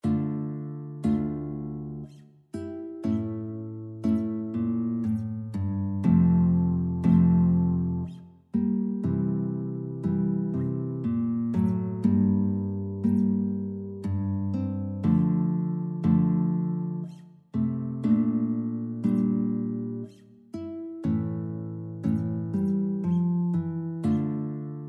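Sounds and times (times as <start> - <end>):
sarabande on guitar: 0.0 - 24.8.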